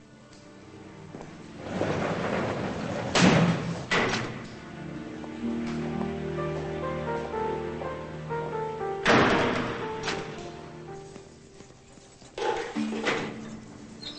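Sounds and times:
sustained music: 0.0 - 14.1
guard working a door open with heavy clunks: 2.0 - 4.5, 9.0 - 10.6.

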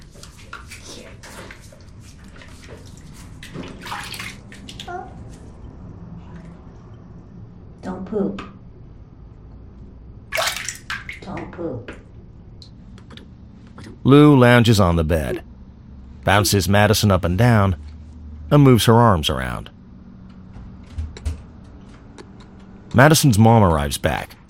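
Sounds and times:
water splashing and sloshing as a baby is washed with soap in a bath: 0.0 - 5.3, 10.3 - 11.3
speech: 8.1 - 8.5, 14.1 - 15.5, 16.2 - 17.9, 18.5 - 19.8, 23.0 - 24.4.

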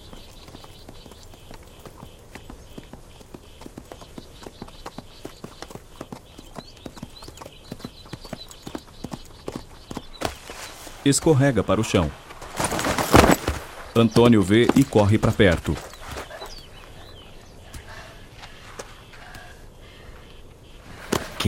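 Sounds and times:
horse hooves clip-clopping in a field carrying a rider: 0.0 - 10.6, 12.6 - 17.0
speech: 11.1 - 12.2, 14.0 - 15.9.

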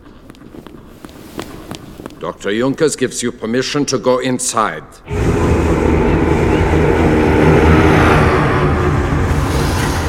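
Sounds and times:
speech: 2.2 - 5.5
giant Junkers aircraft flying with rumbling engine drone: 5.1 - 10.0.

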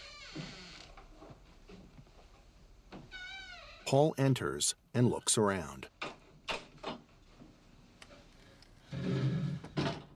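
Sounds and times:
speech: 3.9 - 6.0
wooden chair grinding scrape across the floor: 8.8 - 10.1.

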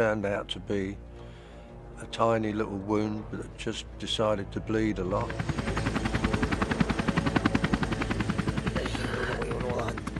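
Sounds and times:
speech: 0.0 - 1.1, 2.0 - 5.6
helicopter hovering overhead with rotor blades chopping and engine whine: 1.7 - 10.1.

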